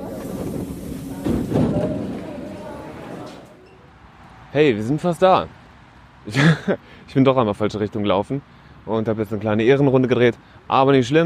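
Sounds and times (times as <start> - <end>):
S-Bahn commuter train running on rails: 0.0 - 3.6
faint voices: 0.0 - 3.9
speech: 4.6 - 5.6, 6.3 - 11.2.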